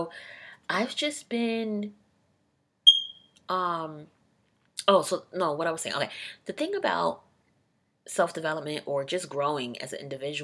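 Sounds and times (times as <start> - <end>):
speech: 0.0 - 2.0, 3.5 - 4.2, 4.8 - 7.2, 8.0 - 10.4
smoke alarm chirping for a low battery: 2.9 - 3.3.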